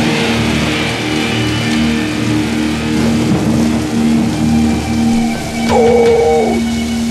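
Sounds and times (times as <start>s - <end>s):
hissing rain from a song played on the radio: 0.0s - 7.0s
brief tonal whine: 4.2s - 7.0s.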